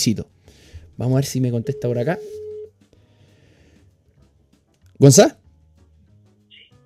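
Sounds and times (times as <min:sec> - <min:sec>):
speech: 0:00.0 - 0:00.4, 0:01.0 - 0:02.4, 0:05.0 - 0:05.4
phone call ringing tone beep over a speakerphone: 0:01.4 - 0:02.8.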